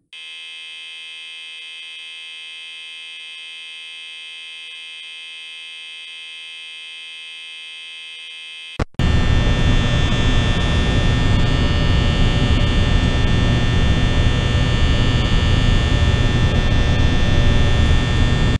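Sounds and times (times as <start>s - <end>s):
door lights buzzing on turn-on: 8.8s - 18.5s.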